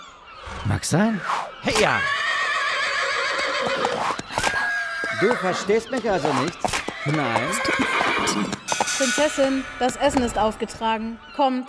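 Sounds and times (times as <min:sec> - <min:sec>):
horse whinnying: 0:00.3 - 0:09.0
speech: 0:00.7 - 0:02.2, 0:05.2 - 0:11.6.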